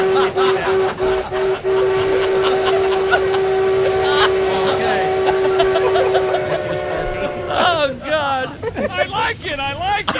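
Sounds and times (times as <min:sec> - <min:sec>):
locomotive horn blowing: 0:00.0 - 0:07.9
laughter: 0:00.0 - 0:10.1
rumbling train noise: 0:00.0 - 0:10.1.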